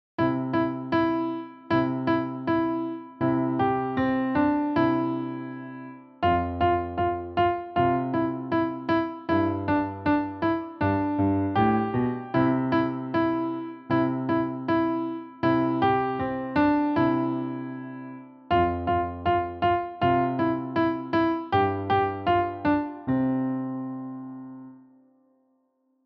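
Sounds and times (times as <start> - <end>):
piano melody: 0.2 - 25.0.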